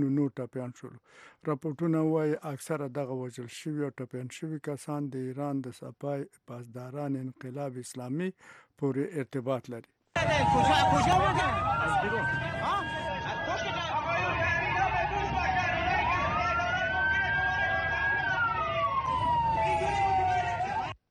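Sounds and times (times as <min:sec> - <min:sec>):
speech: 0:00.0 - 0:12.9
crowd chatter: 0:10.2 - 0:18.4
ambulance sirens wailing in Iran: 0:10.2 - 0:21.0.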